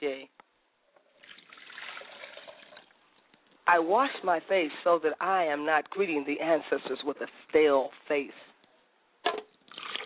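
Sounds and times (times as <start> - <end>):
water pouring into a glass: 1.0 - 3.0, 9.4 - 10.0
speech: 3.7 - 8.5.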